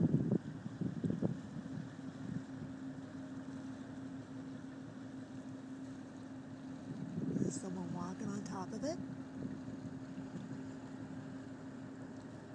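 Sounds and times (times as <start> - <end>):
wind rushing across the microphone: 0.0 - 2.7, 6.8 - 8.4, 9.3 - 10.6
large boat engine droning with a low hum: 0.0 - 12.5
speech: 8.6 - 9.5.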